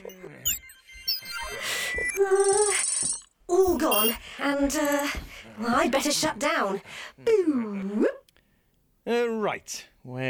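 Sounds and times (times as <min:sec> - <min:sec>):
phone electronic ringtone chirps and warbling beeps: 0:00.0 - 0:04.2
speech: 0:03.8 - 0:08.1, 0:09.1 - 0:10.2.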